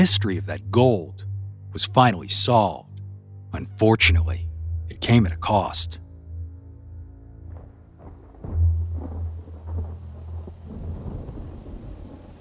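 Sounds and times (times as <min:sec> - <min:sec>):
speech: 0:00.0 - 0:02.9, 0:03.5 - 0:06.0
deep rolling thunder of a thunderstorm: 0:07.5 - 0:12.4
steady hiss of falling rain: 0:07.6 - 0:12.4.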